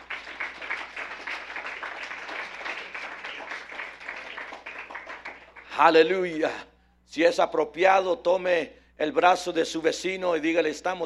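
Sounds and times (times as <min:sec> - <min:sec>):
audience applauding: 0:00.0 - 0:05.8
speech: 0:05.8 - 0:11.0.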